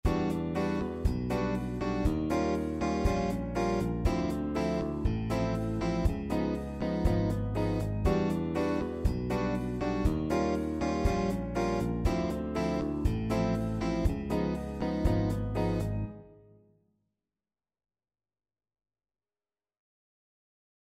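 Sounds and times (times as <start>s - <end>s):
bossa nova band pattern: 0.1s - 16.0s.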